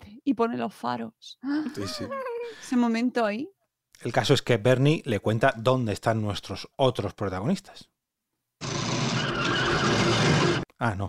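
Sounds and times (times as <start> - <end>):
speech: 0.2 - 7.9, 10.8 - 11.0
car tyre skid screeching: 8.6 - 10.6.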